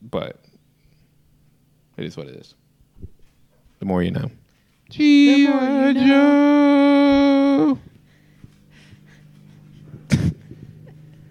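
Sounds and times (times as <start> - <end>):
speech: 0.1 - 0.5, 2.0 - 2.6, 3.8 - 7.9
loud sustained whine: 4.9 - 11.2.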